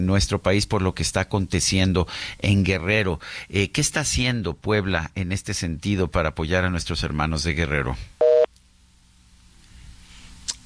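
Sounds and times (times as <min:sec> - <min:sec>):
speech: 0:00.0 - 0:08.1
faint telephone line hiss: 0:08.1 - 0:10.6
telephone busy tone after dropped call: 0:08.2 - 0:08.5
small click: 0:10.4 - 0:10.6.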